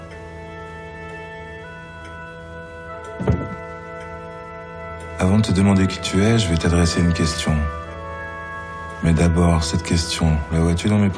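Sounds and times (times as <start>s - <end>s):
dull double knock during a spiritualist séance: 3.2s - 3.7s
speech: 5.2s - 7.8s, 9.0s - 11.1s.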